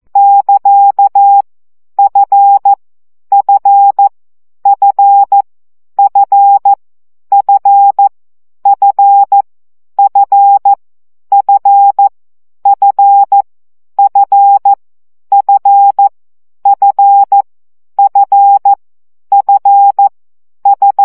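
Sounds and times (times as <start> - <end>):
CW morse code practice tones: 0.2 - 1.4, 2.0 - 4.1, 4.7 - 5.4, 6.0 - 8.1, 10.0 - 12.1, 12.7 - 13.4, 14.0 - 16.1, 16.7 - 17.4, 18.0 - 21.0.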